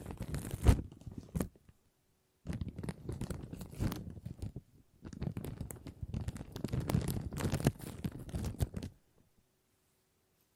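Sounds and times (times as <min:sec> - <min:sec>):
plastic crinkling in crackling bursts: 0:00.0 - 0:01.6, 0:02.5 - 0:09.0.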